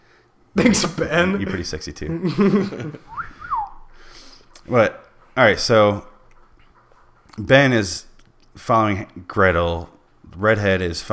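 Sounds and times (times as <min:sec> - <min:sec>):
quiet low hum: 0:00.0 - 0:11.1
speech: 0:00.6 - 0:03.3, 0:04.7 - 0:06.1, 0:07.4 - 0:11.1
laughter: 0:00.6 - 0:03.6
person whistling with a downward glide: 0:03.1 - 0:04.0.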